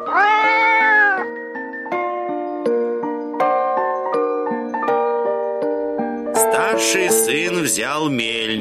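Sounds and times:
cat meowing loudly: 0.0s - 1.4s
gentle instrumental melody of stepping notes: 0.0s - 8.5s
speech: 6.8s - 8.5s.

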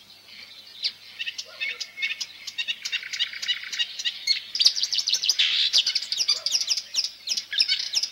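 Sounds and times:
marsh warbler singing: 0.0s - 8.1s.

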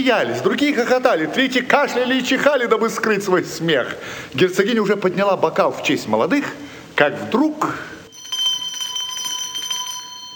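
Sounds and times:
speech: 0.0s - 8.0s
small hand bell ringing: 8.1s - 10.3s.

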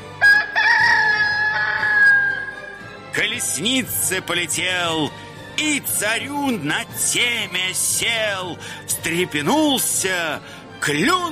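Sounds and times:
rooster crowing: 0.2s - 2.6s
speech: 3.2s - 11.3s.

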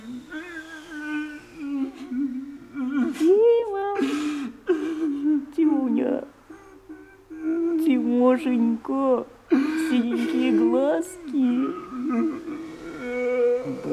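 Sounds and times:
man weeping into his hands: 0.0s - 5.8s, 6.4s - 8.2s, 11.6s - 13.9s
speech: 8.4s - 11.2s.

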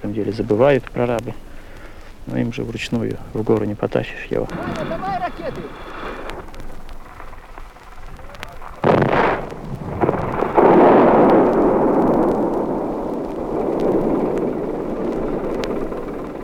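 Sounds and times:
speech: 0.1s - 1.5s, 2.3s - 6.4s
bigger rock blast rolling into a long heavy rumble: 4.4s - 16.4s
rock blasting explosion at a construction site: 4.5s - 16.2s.

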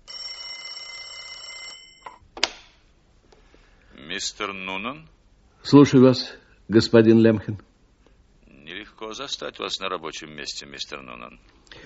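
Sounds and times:
telephone ringing in an office with a metallic bell tone: 0.0s - 2.2s
speech: 4.2s - 7.7s, 9.1s - 11.8s.

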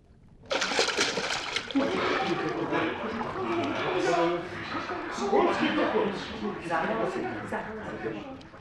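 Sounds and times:
water splashing and churning as people plunge in and thrash about: 0.4s - 2.7s
laughter: 1.4s - 8.0s.

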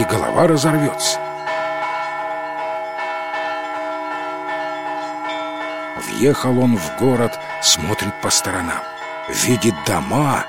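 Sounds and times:
church bells pealing loudly: 0.0s - 10.4s
speech: 0.1s - 1.3s, 6.2s - 10.4s.

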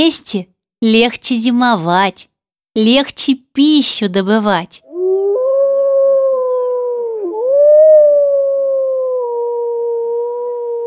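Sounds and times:
speech: 0.0s - 4.8s
wolves howling: 4.9s - 10.8s.

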